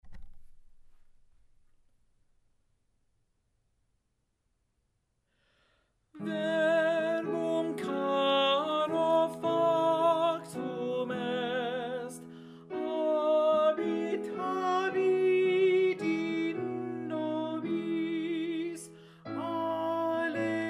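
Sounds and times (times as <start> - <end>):
alto voice singing: 6.2 - 20.6.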